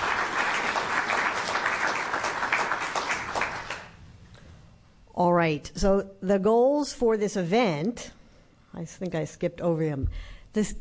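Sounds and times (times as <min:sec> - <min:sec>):
audience applause at an evening symposium: 0:00.0 - 0:04.0
speech: 0:05.2 - 0:10.7.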